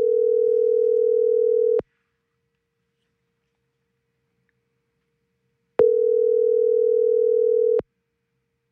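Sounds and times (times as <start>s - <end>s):
buzzy phone ringback tones on an outgoing call: 0.0s - 1.8s, 5.8s - 7.8s.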